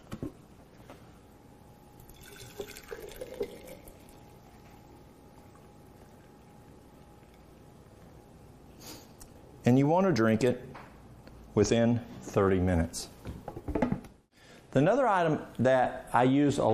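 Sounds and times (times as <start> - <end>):
warm water pouring into a glass mason jar: 2.0 - 4.4
speech: 9.7 - 10.7, 11.6 - 13.1, 14.8 - 16.7.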